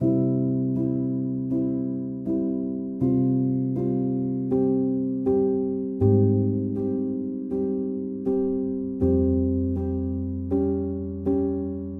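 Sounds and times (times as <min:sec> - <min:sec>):
dark ethnic piano chords in C minor: 0:00.0 - 0:11.9.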